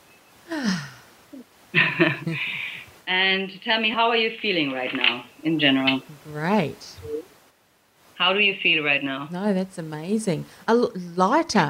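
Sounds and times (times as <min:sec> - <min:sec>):
person breathing deeply during a guided relaxation exercise: 0:00.5 - 0:01.1, 0:02.4 - 0:02.9
person sighing during a guided relaxation exercise: 0:00.5 - 0:01.5
speech: 0:01.7 - 0:07.1, 0:08.2 - 0:11.6.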